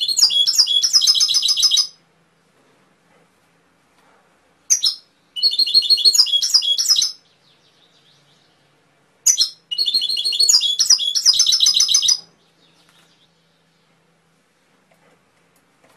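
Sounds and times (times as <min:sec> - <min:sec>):
canary song with trilled notes: 0:00.0 - 0:02.1, 0:04.6 - 0:14.6.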